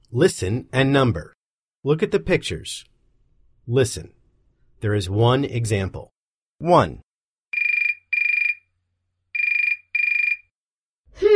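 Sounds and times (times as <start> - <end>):
speech: 0.1 - 2.9, 3.7 - 4.2, 4.8 - 7.0
telephone ringing with a bright high electronic trill: 7.6 - 8.7, 9.4 - 10.6.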